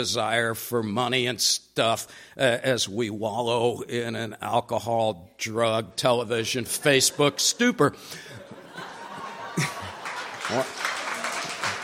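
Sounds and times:
speech: 0.0s - 8.4s, 10.5s - 10.9s
people laughing: 6.6s - 11.8s
audience clapping: 8.8s - 11.8s.

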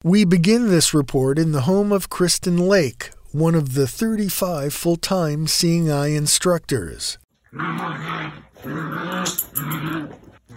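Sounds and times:
speech: 0.0s - 10.5s
9-week-old Labrador Retriever puppy growling: 7.4s - 10.5s.

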